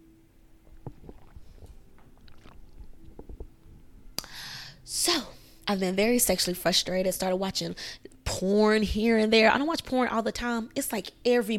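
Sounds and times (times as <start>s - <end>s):
person sipping a drink: 0.6s - 4.5s
speech: 5.1s - 11.5s.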